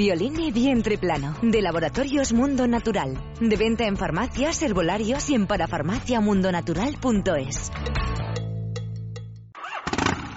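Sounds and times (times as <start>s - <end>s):
speech: 0.0s - 8.0s
chopper motorcycle engine starting and revving: 9.6s - 10.3s.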